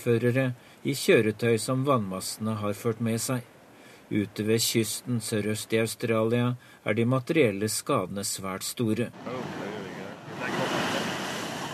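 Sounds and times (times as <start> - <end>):
speech: 0.0 - 9.8
large ocean wave crashing onto the shore: 9.2 - 11.7.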